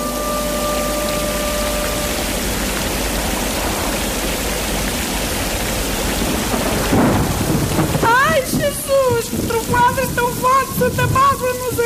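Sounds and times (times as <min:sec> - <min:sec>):
steady heavy rain in a thunderstorm: 0:00.0 - 0:11.8
deep rolling thunder rumble: 0:01.9 - 0:11.4.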